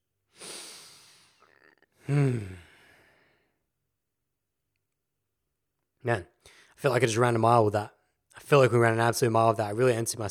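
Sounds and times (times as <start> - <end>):
deep breath with sighing exhale: 0.3 - 3.6
speech: 2.1 - 2.6, 6.0 - 10.2.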